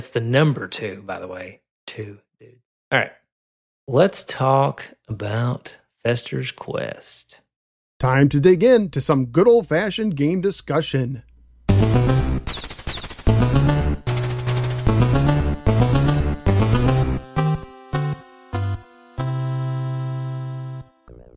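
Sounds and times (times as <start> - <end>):
speech: 0.0 - 3.2, 3.9 - 7.4, 8.0 - 12.1
loud retro chiptune video game music: 11.7 - 21.1.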